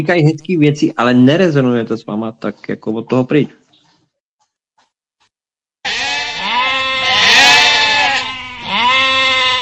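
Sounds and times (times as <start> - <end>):
speech: 0.0 - 3.6
sheep bleating: 5.8 - 9.6.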